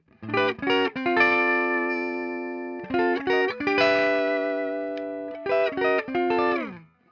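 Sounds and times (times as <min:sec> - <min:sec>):
Fender Classic Player Jazzmaster electric guitar clean tone: 0:00.0 - 0:07.1.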